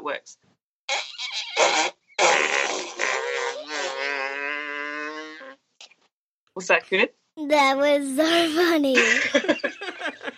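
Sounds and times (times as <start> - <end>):
speech: 0.1 - 1.9, 6.6 - 9.6
fake fart noises made by a person blowing against hands held to mouth: 0.9 - 5.6.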